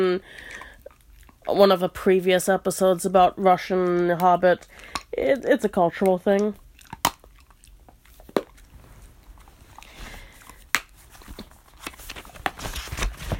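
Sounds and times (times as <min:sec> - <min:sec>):
speech: 0:00.0 - 0:00.6, 0:01.5 - 0:06.6
dog chewing on dried yak cheese chew: 0:06.4 - 0:12.0.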